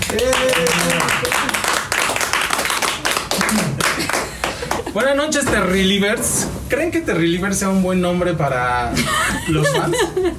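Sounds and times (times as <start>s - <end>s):
group of people clapping: 0.0s - 5.4s
speech: 0.1s - 0.5s, 5.0s - 10.3s
laughter: 9.0s - 10.3s.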